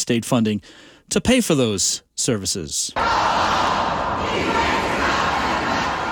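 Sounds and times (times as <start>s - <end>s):
speech: 0.0s - 5.2s
crowd of protesters shouting at a police press conference: 3.0s - 6.1s.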